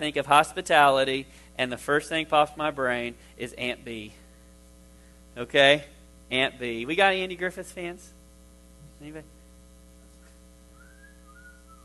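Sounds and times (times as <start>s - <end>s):
speech: 0.0s - 4.2s, 5.4s - 8.2s, 9.0s - 9.3s
steady low electrical hum: 0.0s - 11.8s
person whistling a TV theme tune: 10.8s - 11.8s.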